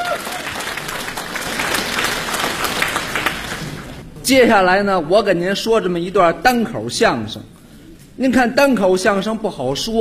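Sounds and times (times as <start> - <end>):
audience applause at a crosstalk comedy show: 0.0 - 4.0
speech: 4.3 - 7.5, 8.2 - 10.0.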